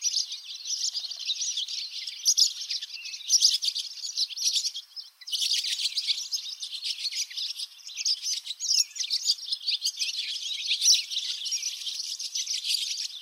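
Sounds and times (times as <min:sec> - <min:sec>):
barn swallow singing in Lower Saxony, Germany: 0:00.0 - 0:13.2.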